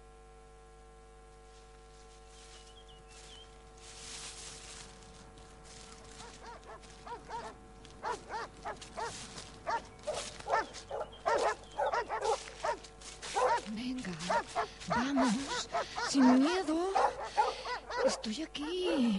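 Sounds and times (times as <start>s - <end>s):
steady low hum: 0.0s - 19.1s
hungry wolves snarling and barking in the mountains: 5.7s - 19.1s
speech: 18.2s - 19.1s.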